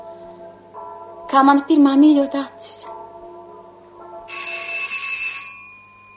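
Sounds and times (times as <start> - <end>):
speech: 1.3 - 3.0
electronic doorbell ringing: 4.2 - 6.1.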